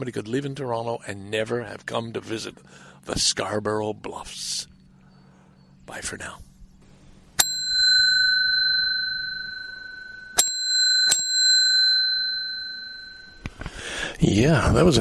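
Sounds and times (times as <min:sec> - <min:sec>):
speech: 0:00.0 - 0:04.7, 0:05.9 - 0:06.5, 0:14.0 - 0:15.0
small flower-decorated hand bell ringing in a basement bar: 0:07.4 - 0:13.8.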